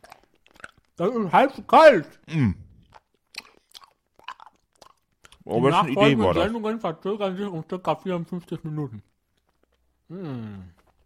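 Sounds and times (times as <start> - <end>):
person chewing crunchy food: 0.0 - 1.0, 2.3 - 6.2, 9.0 - 11.0
speech: 1.0 - 2.6, 5.5 - 9.1, 10.1 - 10.8.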